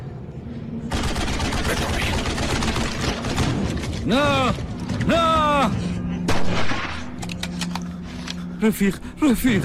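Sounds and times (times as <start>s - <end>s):
rapid burst of gunfire cracks: 0.9s - 4.0s
speech: 4.1s - 5.8s, 8.6s - 9.6s
loud sharp gunshot: 6.3s - 7.1s.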